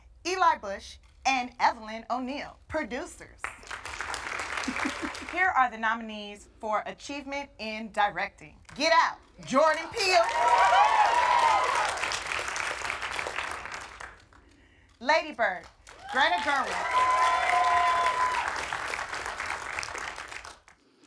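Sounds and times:
speech: 0:00.5 - 0:03.6, 0:04.7 - 0:11.5, 0:15.0 - 0:17.3
large audience applauding at an awards ceremony: 0:03.6 - 0:05.3, 0:10.0 - 0:14.4, 0:15.8 - 0:20.8
whoops from an awards ceremony audience: 0:10.1 - 0:12.2, 0:15.9 - 0:18.9.

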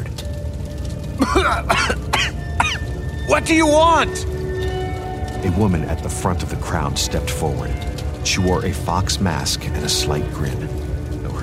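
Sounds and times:
steady low rumble: 0:00.0 - 0:11.4
speech: 0:01.2 - 0:02.4, 0:03.3 - 0:04.3, 0:05.4 - 0:11.4
person coughing and throat clearing in fiery heat: 0:01.2 - 0:02.8.

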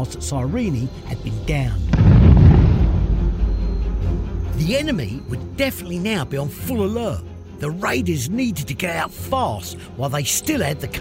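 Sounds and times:
speech: 0:00.0 - 0:02.1, 0:04.6 - 0:10.9
distant explosion with deep rumble: 0:01.8 - 0:04.3.

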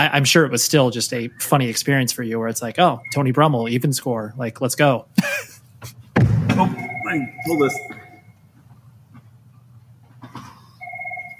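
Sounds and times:
speech: 0:00.0 - 0:06.0, 0:06.6 - 0:08.0
low room hum: 0:00.0 - 0:11.3
phone ringing with a steady electronic tone: 0:06.6 - 0:08.3, 0:10.7 - 0:11.3.

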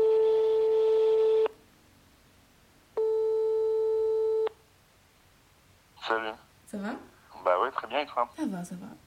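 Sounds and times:
telephone call ringing tone: 0:00.0 - 0:01.6, 0:03.0 - 0:04.5
speech: 0:08.0 - 0:09.0.

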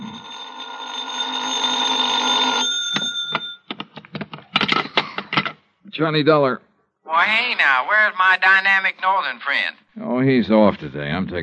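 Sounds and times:
telephone bell ringing: 0:00.0 - 0:03.7
sharp clicks and clatters: 0:02.9 - 0:05.6
speech: 0:06.0 - 0:11.4.

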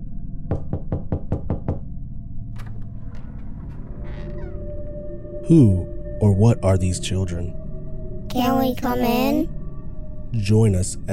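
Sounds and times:
low rumbling background: 0:00.0 - 0:11.1
sharp knocking on a door: 0:00.5 - 0:01.9
speech: 0:05.5 - 0:07.6, 0:08.4 - 0:09.6, 0:10.3 - 0:11.1.

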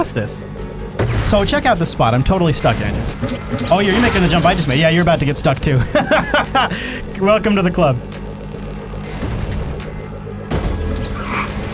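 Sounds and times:
speech: 0:00.0 - 0:08.2
video game car engine droning hum: 0:00.0 - 0:11.7
laughter: 0:05.8 - 0:07.2.

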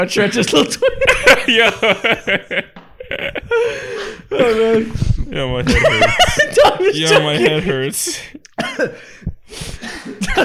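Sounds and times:
laughter: 0:00.0 - 0:09.1, 0:09.8 - 0:10.4
speech: 0:00.0 - 0:10.4
person coughing: 0:08.6 - 0:09.1.

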